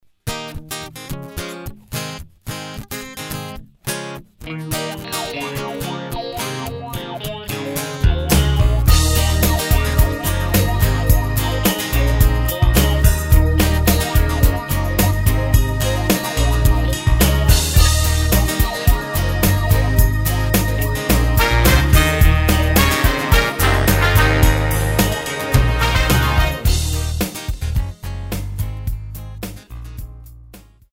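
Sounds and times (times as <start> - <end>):
smooth jazz backing track in E-flat without saxophone: 6.8 - 30.8.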